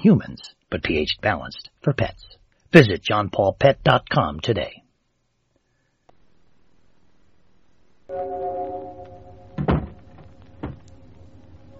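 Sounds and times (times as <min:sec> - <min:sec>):
speech: 0:00.0 - 0:04.8
door shutting with a solid thump: 0:09.6 - 0:10.9.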